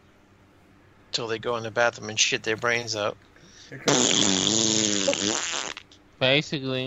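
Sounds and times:
speech: 0:01.2 - 0:06.8
long loud buzzing fart: 0:03.6 - 0:06.0.

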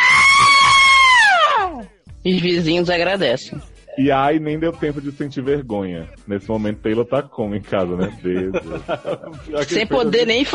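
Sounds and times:
re-enacted high-pitched human scream: 0:00.0 - 0:01.8
speech: 0:02.2 - 0:10.5
laughter: 0:07.4 - 0:10.5.

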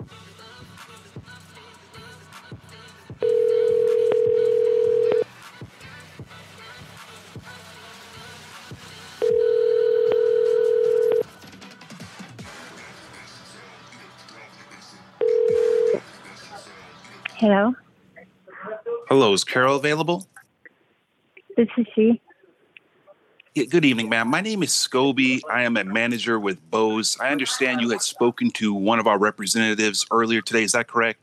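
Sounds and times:
cell phone call ringback tones: 0:03.2 - 0:05.2, 0:09.2 - 0:11.3, 0:15.2 - 0:16.0
speech: 0:19.1 - 0:20.3, 0:21.6 - 0:22.2, 0:23.6 - 0:31.2
laughter: 0:23.6 - 0:28.8.

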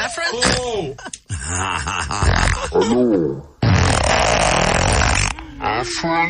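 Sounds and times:
speech: 0:00.3 - 0:02.1, 0:02.8 - 0:03.5, 0:05.8 - 0:06.2
loud sustained fart: 0:02.1 - 0:05.4.

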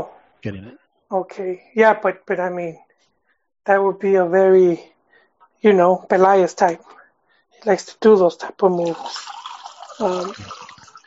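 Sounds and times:
speech: 0:00.0 - 0:02.8, 0:03.6 - 0:04.9, 0:05.6 - 0:07.0, 0:07.6 - 0:09.4, 0:10.0 - 0:10.6
water pouring into a container: 0:08.8 - 0:11.0.

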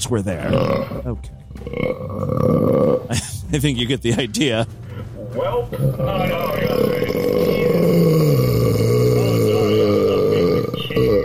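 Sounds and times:
speech: 0:00.0 - 0:04.8, 0:05.4 - 0:07.2
man burping: 0:00.4 - 0:03.3, 0:05.8 - 0:11.2.

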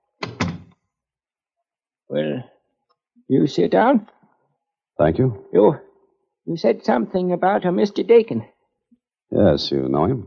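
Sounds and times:
door swinging shut: 0:00.2 - 0:00.7
speech: 0:02.1 - 0:02.5, 0:03.3 - 0:04.2, 0:05.0 - 0:08.5, 0:09.3 - 0:10.2.

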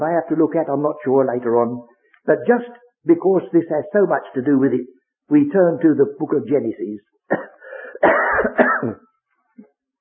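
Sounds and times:
speech: 0:00.0 - 0:08.2, 0:08.8 - 0:09.7
cough: 0:07.3 - 0:09.0
throat-clearing: 0:07.3 - 0:09.0.

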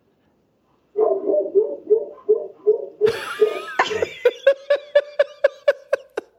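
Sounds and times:
dogs barking: 0:00.8 - 0:04.1
laughter: 0:03.0 - 0:06.3.

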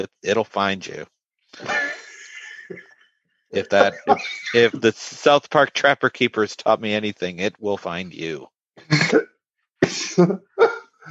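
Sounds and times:
speech: 0:00.0 - 0:01.8, 0:02.7 - 0:02.9, 0:03.5 - 0:11.0
laughter: 0:01.6 - 0:05.0, 0:09.8 - 0:10.9
harsh coughs: 0:08.8 - 0:10.8.

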